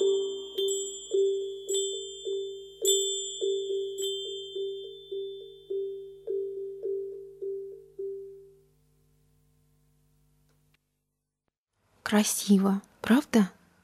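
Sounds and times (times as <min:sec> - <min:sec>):
small hand bell ringing: 0:00.0 - 0:07.0
speech: 0:12.1 - 0:13.6.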